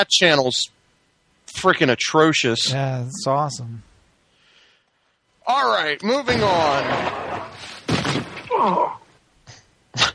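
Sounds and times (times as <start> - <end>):
speech: 0.0 - 0.8, 1.5 - 3.9, 5.5 - 9.0
gunshot sound effect: 6.2 - 8.5
person groaning and moaning: 8.5 - 9.0.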